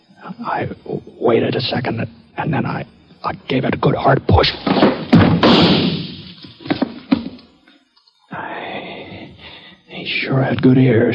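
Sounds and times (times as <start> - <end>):
low steady hiss: 0.0 - 11.1
speech: 0.2 - 5.0, 10.0 - 11.1
wooden chair toppling to the floor: 4.5 - 7.4
gunshot: 4.7 - 6.4.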